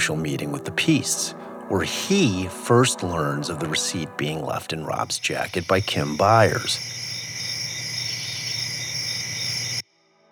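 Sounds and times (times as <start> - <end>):
speech: 0.0 - 7.0
chorus of crickets chirping: 3.5 - 9.8.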